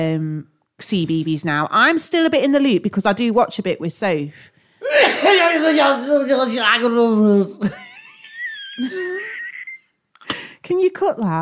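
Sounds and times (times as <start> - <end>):
speech: 0.0 - 7.8, 8.8 - 9.1, 10.7 - 11.3
loud exaggerated sneeze: 4.8 - 6.0
laughter: 7.6 - 10.0.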